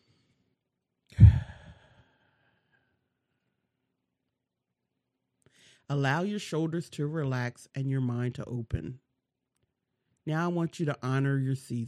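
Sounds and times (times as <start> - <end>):
slow deep breath out during a guided relaxation exercise: 1.2 - 2.9
speech: 5.9 - 9.0, 10.3 - 11.8.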